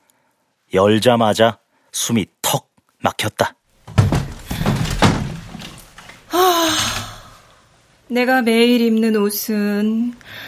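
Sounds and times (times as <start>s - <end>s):
speech: 0.7s - 4.1s, 8.1s - 10.4s
hollow wooden thunks and knocks of a wardrobe door: 3.8s - 6.3s
wardrobe door being opened: 3.8s - 6.3s
brief rustling rattle of a wardrobe door settling: 3.9s - 6.3s.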